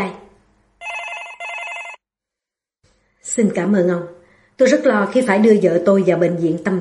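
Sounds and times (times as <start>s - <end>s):
electronic telephone ringing in a doctor's office: 0.8s - 2.0s
speech: 3.4s - 6.8s.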